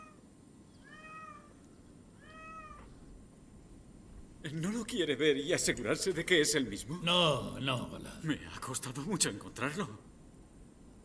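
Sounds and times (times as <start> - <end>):
low hum: 0.0 - 11.0
cat meowing: 0.8 - 1.6, 2.2 - 2.9
speech: 4.4 - 10.1.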